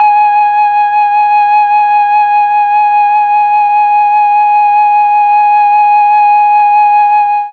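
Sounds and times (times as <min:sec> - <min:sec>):
Mellotron flute note G sharp three: 0:00.0 - 0:07.5.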